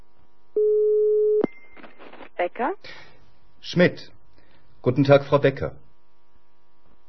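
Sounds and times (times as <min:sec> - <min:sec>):
telephone ringback tone after dialing: 0:00.6 - 0:01.4
speech: 0:02.4 - 0:04.2, 0:04.8 - 0:05.8.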